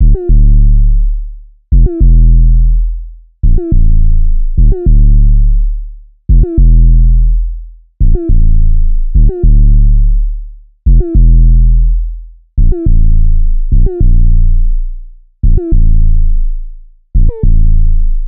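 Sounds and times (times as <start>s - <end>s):
synth bass loop in Dm at 105: 0.0s - 18.2s.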